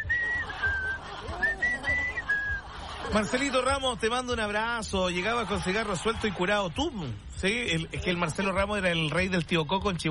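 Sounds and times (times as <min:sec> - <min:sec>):
person whistling a short tune: 0:00.0 - 0:02.7
laughter: 0:00.0 - 0:07.0
speech: 0:03.1 - 0:10.0.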